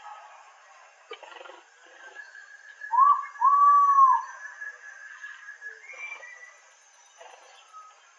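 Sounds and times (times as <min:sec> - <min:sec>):
steady insect-like drone: 0:00.0 - 0:08.1
Ivory-breasted pitta Pitta maxima giving a two-part whistle: 0:02.9 - 0:04.8.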